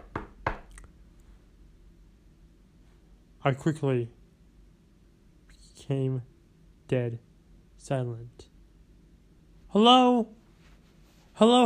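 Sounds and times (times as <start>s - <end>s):
knocks on a door: 0.0s - 0.7s
speech: 3.4s - 4.2s, 5.9s - 6.3s, 6.9s - 8.5s, 9.7s - 10.4s, 11.4s - 11.6s.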